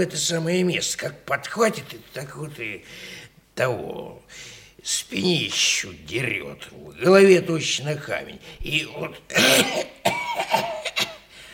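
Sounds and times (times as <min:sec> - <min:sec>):
speech: 0:00.0 - 0:09.9
sick person coughing: 0:09.3 - 0:11.3.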